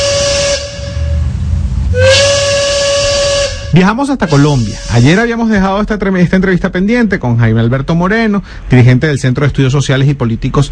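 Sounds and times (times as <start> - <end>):
steam train whistle: 0.0 - 1.3, 1.9 - 5.2
hissing of steam train: 0.0 - 5.3
speech: 3.8 - 10.7.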